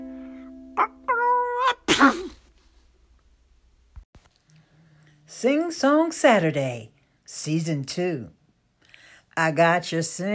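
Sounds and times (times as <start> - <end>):
person sneezing theatrically: 1.7 - 2.5
speech: 5.4 - 8.4, 9.4 - 10.3.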